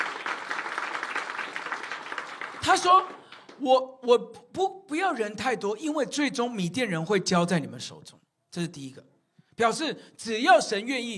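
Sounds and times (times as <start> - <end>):
large audience clapping: 0.0 - 3.7
speech: 2.6 - 11.1.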